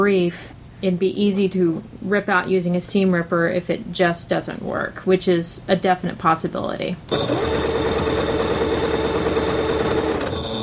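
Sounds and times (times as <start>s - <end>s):
speech: 0.0s - 8.0s
sewing machine stitching a decorative line along a seam: 7.1s - 10.6s.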